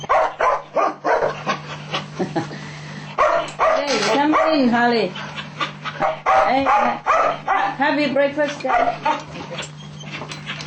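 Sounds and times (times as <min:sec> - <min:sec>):
dog barking and yelping: 0:00.0 - 0:01.7, 0:03.2 - 0:04.7, 0:05.4 - 0:07.8, 0:08.6 - 0:09.7
speech: 0:02.2 - 0:02.6, 0:04.5 - 0:05.3, 0:06.4 - 0:09.7.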